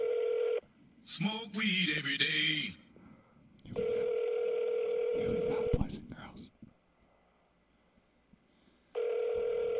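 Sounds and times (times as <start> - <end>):
telephone ringback tone on an outgoing call: 0.0 - 0.6, 3.8 - 5.7, 9.0 - 9.7
speech: 1.0 - 2.8.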